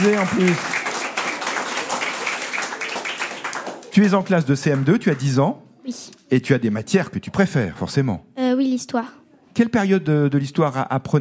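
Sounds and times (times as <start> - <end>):
speech: 0.0 - 0.8, 4.0 - 11.2
applause of many hands for a child's sung performance: 0.0 - 5.3.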